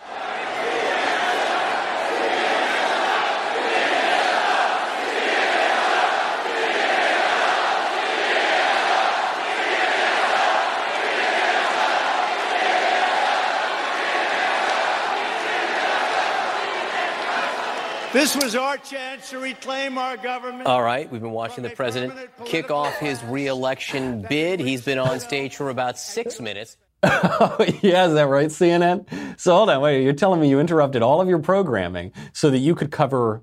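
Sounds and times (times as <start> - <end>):
large crowd chanting in unison at a political rally: 0.0 - 25.3
speech: 18.2 - 33.4
laughter: 21.4 - 28.3.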